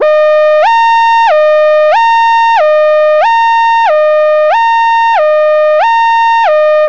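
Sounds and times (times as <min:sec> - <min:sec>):
hi-lo police siren: 0:00.0 - 0:06.8.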